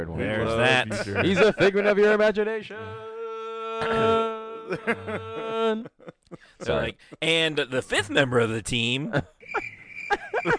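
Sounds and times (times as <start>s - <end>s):
speech: 0.0s - 3.1s, 3.8s - 10.5s
laughter: 0.1s - 3.0s, 3.8s - 7.2s, 9.1s - 10.5s
crickets chirping in a high-pitched trill: 9.4s - 10.5s.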